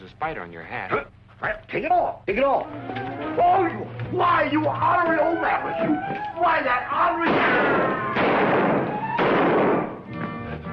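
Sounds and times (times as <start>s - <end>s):
speech: 0.2s - 9.5s
gunshots: 7.2s - 10.0s.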